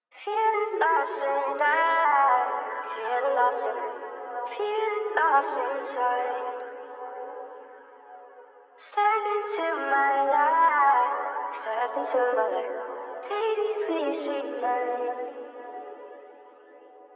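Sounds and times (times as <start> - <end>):
vocal at 110 BPM in F sharp minor: 0.2 - 6.8, 8.8 - 15.9.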